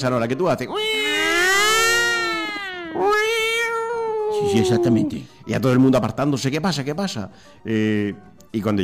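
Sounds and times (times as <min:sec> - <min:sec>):
speech: 0:00.0 - 0:01.3, 0:04.4 - 0:08.8
voice imitating a police siren: 0:00.7 - 0:05.2.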